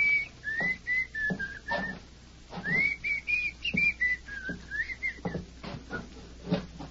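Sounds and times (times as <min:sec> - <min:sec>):
man whistling a slow wandering tune inside a tiny cabin: 0:00.0 - 0:02.0, 0:02.6 - 0:06.1
soft footsteps: 0:00.0 - 0:06.8
small knocks: 0:00.5 - 0:06.8.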